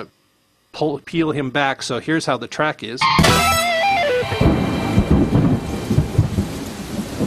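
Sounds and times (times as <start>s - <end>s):
speech: 0.8s - 3.5s
musical tone: 3.0s - 6.4s
low rolling thunder rumbling: 3.3s - 7.2s
heavy rain hissing in a rainstorm: 4.2s - 7.2s.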